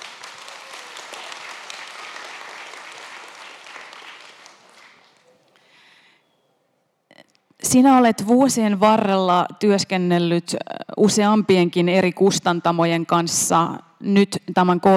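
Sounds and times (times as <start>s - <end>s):
crowd applauding a publisher: 0.0s - 5.9s
speech: 7.7s - 14.9s.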